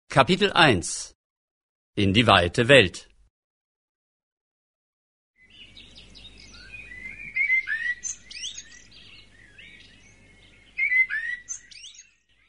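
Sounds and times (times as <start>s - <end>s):
speech: 0.1s - 1.2s, 2.0s - 3.1s
birds singing in spring sunshine: 5.4s - 12.4s.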